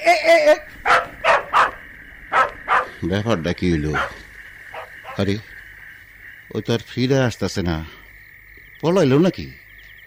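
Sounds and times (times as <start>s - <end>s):
speech: 0.0s - 0.7s, 3.0s - 4.2s, 5.2s - 5.6s, 6.5s - 8.0s, 8.8s - 9.6s
dog giving a whiny yelp while chasing a running man: 0.8s - 3.0s, 4.0s - 5.3s
dogs barking while chasing a running man: 0.8s - 3.1s, 3.8s - 5.4s.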